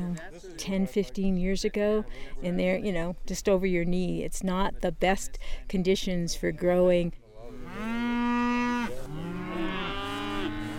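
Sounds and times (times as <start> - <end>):
speech: 0.0 - 7.9
cow mooing: 7.6 - 10.7.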